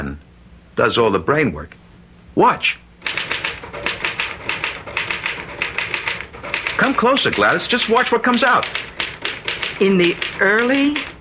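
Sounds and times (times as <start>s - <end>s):
speech: 0.0s - 1.8s, 2.4s - 2.8s, 6.8s - 8.8s, 9.8s - 11.1s
typewriter typing: 3.0s - 11.1s.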